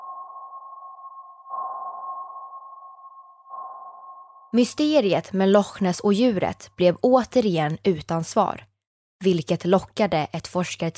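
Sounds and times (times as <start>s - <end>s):
echo-sounder sonar pings on a search boat at Loch Ness: 0.0s - 4.6s
steady droning electronic tone: 0.0s - 4.6s
speech: 4.5s - 10.9s.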